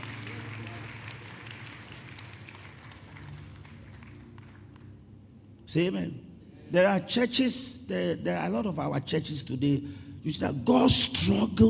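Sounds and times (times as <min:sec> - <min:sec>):
audience clapping: 0:00.0 - 0:05.0
speech: 0:05.7 - 0:11.6.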